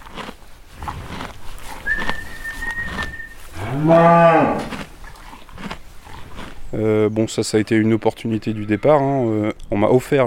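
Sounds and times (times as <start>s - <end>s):
quiet outdoor noise: 0.0s - 10.2s
thin high whistling tone: 1.8s - 3.5s
Bretonne Pie Noir cow mooing: 2.6s - 4.9s
speech: 3.8s - 4.7s, 6.7s - 10.2s.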